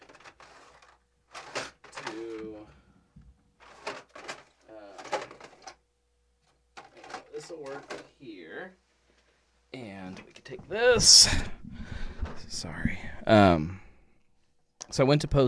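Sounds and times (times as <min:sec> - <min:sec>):
rummaging through drawers with items clattering: 0:00.0 - 0:02.6, 0:03.6 - 0:05.8, 0:06.8 - 0:08.1
speech: 0:07.5 - 0:08.8, 0:09.7 - 0:11.6, 0:12.4 - 0:13.8, 0:14.9 - 0:15.4.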